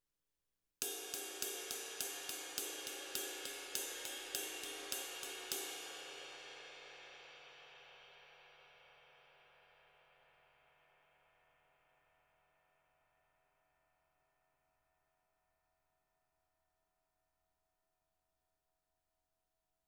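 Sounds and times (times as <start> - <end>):
20 crash ride cymbal: 0.8 - 8.3.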